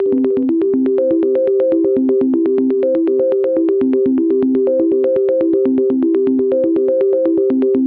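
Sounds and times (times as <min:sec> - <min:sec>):
122 BPM arpeggios in C major and A minor: 0:00.0 - 0:07.8.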